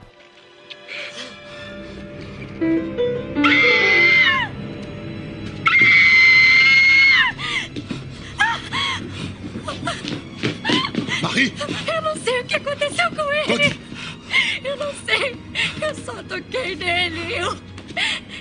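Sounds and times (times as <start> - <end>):
speech: 2.6 - 3.0, 15.9 - 17.7
woman screaming: 3.4 - 4.5, 5.7 - 7.4
woman's breathless cries and gasps: 7.1 - 12.2, 13.4 - 16.0.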